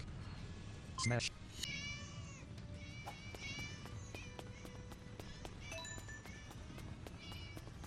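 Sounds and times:
speech: 0:01.0 - 0:01.8
cats meowing: 0:01.6 - 0:07.8.

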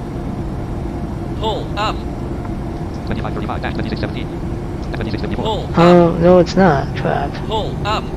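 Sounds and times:
flight simulator airplane engine roar in a nosedive: 0:00.0 - 0:08.1
flight simulator cockpit voice warnings to pull up: 0:01.4 - 0:02.0, 0:03.1 - 0:04.2, 0:04.9 - 0:08.1
speech: 0:01.4 - 0:02.1, 0:03.1 - 0:08.1.

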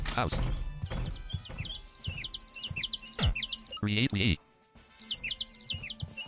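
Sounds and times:
speech: 0:00.1 - 0:00.7, 0:03.9 - 0:04.5
bird chirping: 0:00.4 - 0:03.8, 0:05.0 - 0:06.2.

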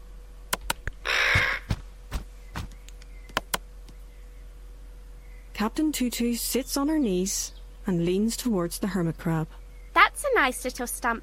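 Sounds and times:
sharp clicks and taps: 0:00.5 - 0:04.0
black crow cawing angrily while pecking at a telescope: 0:01.0 - 0:01.8
speech: 0:05.6 - 0:09.6, 0:10.3 - 0:11.2.

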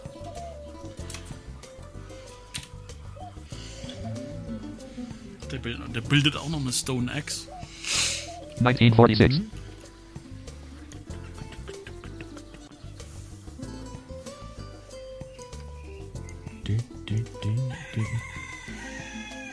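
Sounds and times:
music: 0:00.0 - 0:19.5
speech: 0:05.5 - 0:07.6, 0:08.6 - 0:09.6
rooster crowing: 0:17.6 - 0:19.5.

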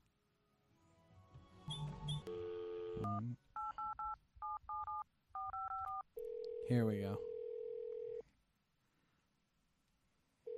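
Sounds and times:
jumble of other phone tones: 0:02.2 - 0:08.2
touch-tone phone number being dialed: 0:02.3 - 0:06.6
speech: 0:03.0 - 0:03.5, 0:06.7 - 0:07.3.

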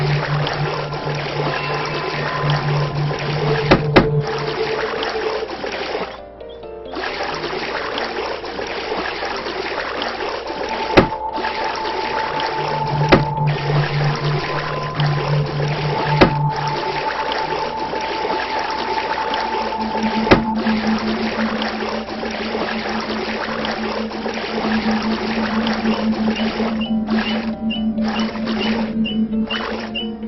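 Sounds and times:
low engine-like hum: 0:00.0 - 0:06.5, 0:10.0 - 0:30.2
sea water sloshing and trickling against a boat hull: 0:00.0 - 0:30.2
sharp knocks: 0:03.7 - 0:04.2, 0:11.0 - 0:11.2, 0:13.1 - 0:13.4, 0:16.1 - 0:16.4, 0:20.2 - 0:20.6.

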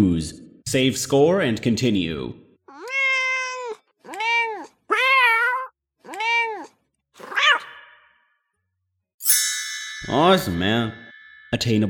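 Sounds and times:
speech: 0:00.0 - 0:02.4, 0:10.1 - 0:11.8
cats meowing in a video game: 0:02.7 - 0:08.0.

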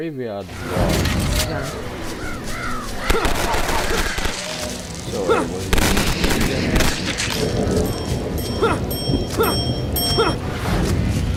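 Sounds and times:
speech: 0:00.0 - 0:04.3, 0:05.1 - 0:11.2
bird-like cawing cries: 0:01.6 - 0:04.3
machine gun firing in a video game: 0:03.1 - 0:04.7, 0:05.6 - 0:07.8.

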